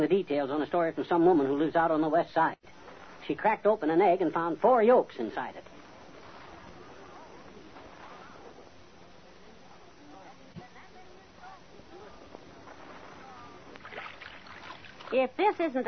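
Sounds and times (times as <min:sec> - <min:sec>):
speech: 0:00.0 - 0:05.7, 0:15.1 - 0:15.8
rowboat rowed fast against the undertow, water sloshing and splashing: 0:12.6 - 0:15.3.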